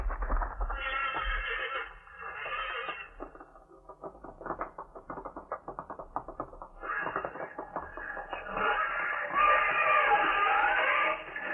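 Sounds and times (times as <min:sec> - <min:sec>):
fighting horses scuffling: 0:00.0 - 0:11.5
fighting horses squealing neighs: 0:00.7 - 0:03.4, 0:06.8 - 0:11.5.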